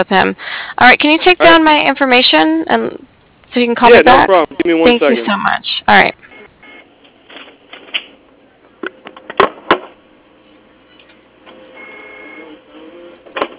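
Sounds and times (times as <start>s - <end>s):
speech: 0.0s - 6.2s
straining printer mechanical buzz: 6.1s - 13.5s
printer running with paper jam: 6.3s - 13.5s.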